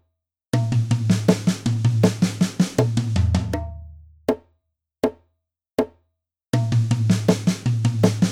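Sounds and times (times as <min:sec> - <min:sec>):
drum fills at 80 bpm: 0:00.5 - 0:04.1, 0:06.5 - 0:08.3.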